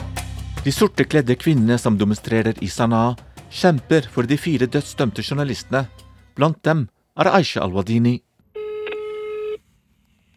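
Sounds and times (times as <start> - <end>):
speech: 0.6 - 8.3
telephone ringback tone while placing a call: 8.6 - 9.6.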